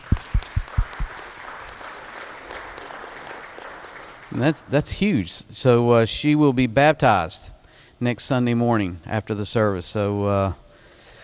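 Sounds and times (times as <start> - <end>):
congregation clapping during a church service: 0.0 - 5.1
speech: 4.3 - 10.6.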